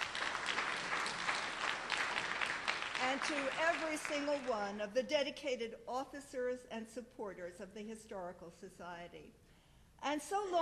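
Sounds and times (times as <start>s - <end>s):
audience applause at a court historical society gathering: 0.0s - 4.5s
speech: 3.1s - 9.4s, 10.0s - 10.6s.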